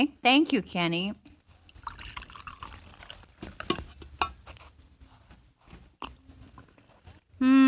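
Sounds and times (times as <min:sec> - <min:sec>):
speech: 0:00.0 - 0:01.3
coffee being poured into a cup: 0:01.7 - 0:03.9.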